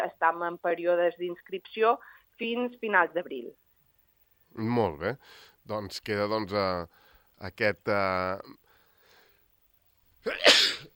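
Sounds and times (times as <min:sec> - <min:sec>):
speech: 0:00.2 - 0:03.6, 0:04.5 - 0:08.6, 0:10.2 - 0:10.9
person sneezing from spring pollen: 0:10.2 - 0:10.9.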